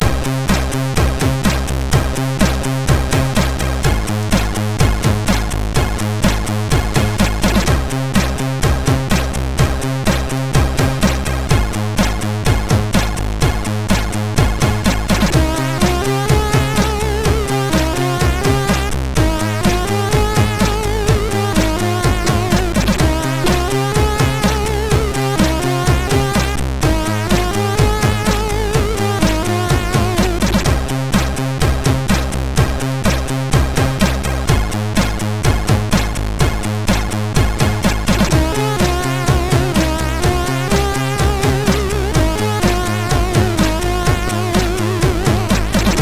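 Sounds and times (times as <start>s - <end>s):
MOS6581R3 SID chip music: 0.0s - 46.0s.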